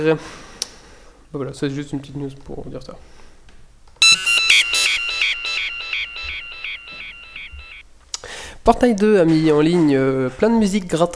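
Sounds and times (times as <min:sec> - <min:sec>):
speech: 0:00.0 - 0:00.4, 0:01.3 - 0:03.2, 0:08.7 - 0:11.1
mobile phone ringtone with bright electronic melody: 0:04.0 - 0:07.8.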